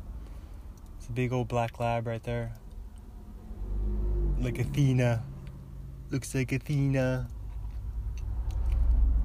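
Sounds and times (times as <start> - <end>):
deep road rumble from a car in highway traffic: 0.0 - 9.2
speech: 1.1 - 2.6, 4.4 - 5.3, 6.1 - 7.4
car tire noise: 2.0 - 9.2
low droning car engine: 2.1 - 9.2.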